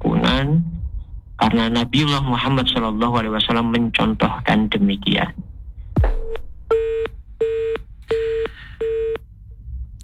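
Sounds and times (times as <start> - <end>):
low thump: 0.0 - 4.5, 5.4 - 8.1
speech: 0.3 - 0.7, 1.4 - 5.4
disconnected telephone line beeps: 6.7 - 9.2.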